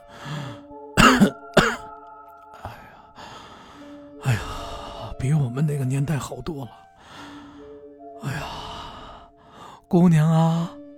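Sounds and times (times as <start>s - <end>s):
elderly woman coughing in short harsh bursts: 1.0s - 1.9s
speech: 5.2s - 6.9s, 9.9s - 10.8s.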